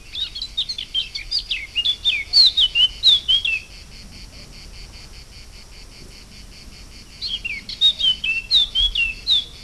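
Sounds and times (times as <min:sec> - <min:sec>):
blackcap Sylvia atricapilla singing a long song bout: 0:00.0 - 0:03.7, 0:07.2 - 0:09.6.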